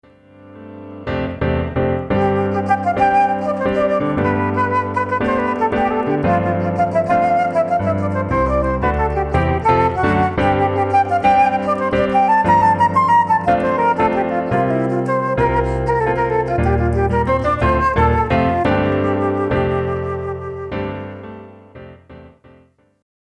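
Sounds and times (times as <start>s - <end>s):
flute playing a jig: 1.7s - 22.0s.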